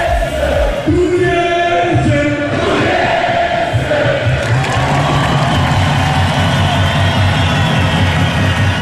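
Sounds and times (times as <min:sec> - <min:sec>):
crowd of football fans cheering and chanting after a cup win in Torres Vedras: 0:00.0 - 0:08.8.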